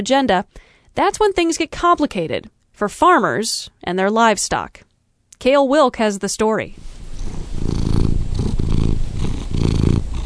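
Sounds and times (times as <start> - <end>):
speech: 0.0 - 7.4
domestic cat purring: 7.0 - 10.2.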